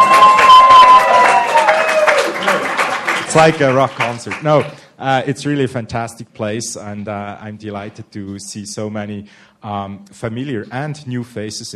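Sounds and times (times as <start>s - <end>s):
sustained high whistle: 0.0s - 2.0s
faint cheering: 0.0s - 3.2s
crowd applauding in a room: 0.0s - 4.9s
speech: 3.4s - 11.7s.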